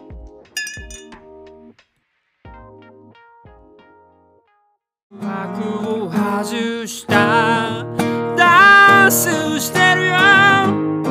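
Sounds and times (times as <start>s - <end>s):
glasses of milk clinking in a toast: 0.6s - 1.2s
speech: 5.2s - 11.0s.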